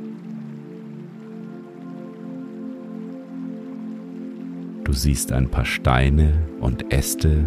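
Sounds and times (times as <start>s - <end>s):
river water flowing: 0.0s - 7.4s
speech: 4.9s - 7.4s.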